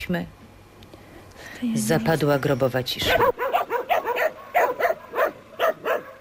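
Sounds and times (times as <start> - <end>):
speech: 0.1 - 0.4, 1.6 - 3.5
dog in the protection zone barking and whimpering: 3.0 - 6.1.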